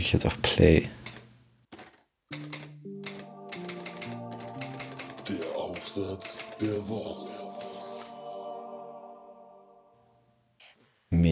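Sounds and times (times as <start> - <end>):
speech: 0.0 - 1.0, 6.0 - 7.4
rapid typewriter-like clicking in a podcast jingle: 1.0 - 7.9
sustained tonal melody in a podcast segment jingle: 2.4 - 10.2.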